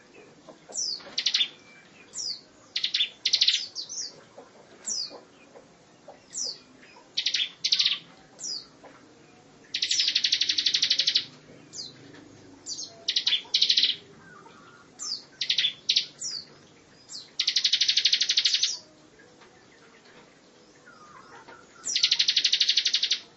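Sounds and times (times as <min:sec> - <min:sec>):
lovebird long continuous trill: 0:00.8 - 0:04.1, 0:06.3 - 0:08.7, 0:09.7 - 0:12.0, 0:12.6 - 0:18.9, 0:20.6 - 0:23.3
lovebird chattering in high buzzy pulsed bursts: 0:02.8 - 0:03.7, 0:07.2 - 0:08.0, 0:09.7 - 0:11.3, 0:12.8 - 0:16.4, 0:17.4 - 0:18.8, 0:21.8 - 0:23.3.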